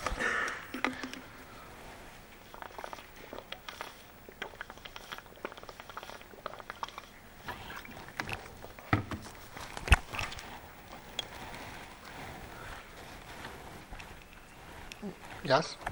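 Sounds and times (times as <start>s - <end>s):
person drinking water with sips and swallows: 0.0s - 15.9s
speech: 15.5s - 15.9s.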